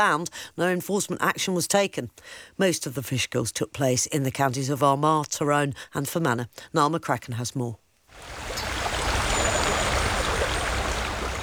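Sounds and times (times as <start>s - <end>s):
speech: 0.0s - 8.6s
rushing river water near a waterfall: 8.1s - 11.4s.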